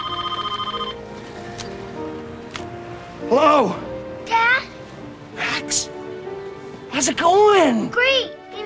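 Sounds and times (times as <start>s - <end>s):
loud telephone bell trilling: 0.0s - 1.0s
speech: 3.3s - 3.9s, 5.7s - 5.9s, 7.0s - 8.4s.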